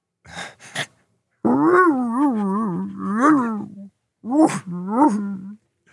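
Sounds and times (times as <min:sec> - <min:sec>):
short breathy sniffs: 0:00.3 - 0:01.1
person imitating a sad dog with whimpering whines: 0:01.4 - 0:05.6.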